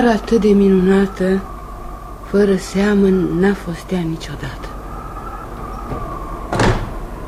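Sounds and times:
speech: 0:00.0 - 0:01.5, 0:02.3 - 0:04.7
steady low hum: 0:00.0 - 0:07.2
door banging shut with a thud and rattle: 0:05.9 - 0:07.0.

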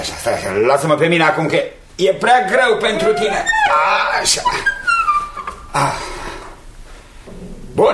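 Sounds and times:
speech: 0:00.0 - 0:04.8, 0:05.7 - 0:06.1
country well pulley creaking with bucket on a rope: 0:02.8 - 0:06.0.

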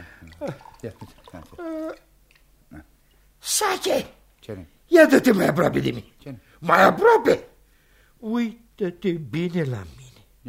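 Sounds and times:
water poured into a drink in a glass: 0:00.0 - 0:02.4
speech: 0:00.4 - 0:02.0, 0:03.6 - 0:07.5, 0:08.2 - 0:10.4.

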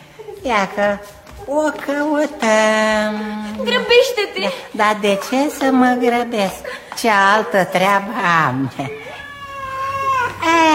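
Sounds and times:
speech: 0:00.4 - 0:09.1
cat meowing: 0:08.9 - 0:10.5.

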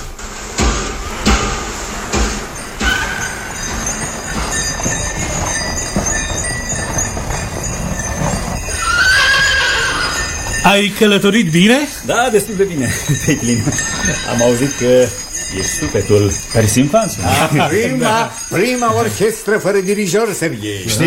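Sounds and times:
horse-drawn sleigh rumble of movement: 0:00.0 - 0:21.0
horse hoof clops: 0:00.6 - 0:21.0
horse whinnying: 0:02.8 - 0:10.7
speech: 0:10.7 - 0:21.0
laughter: 0:12.0 - 0:21.0.

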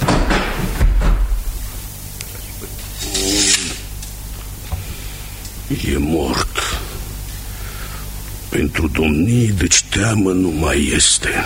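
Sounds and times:
wooden chapel door thud: 0:00.0 - 0:01.5
speech: 0:05.7 - 0:06.5, 0:08.6 - 0:11.4.

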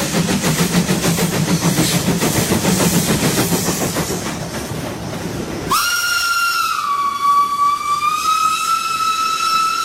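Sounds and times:
train arriving at station platform: 0:00.0 - 0:09.8
loud sustained train whistle: 0:05.7 - 0:09.8.

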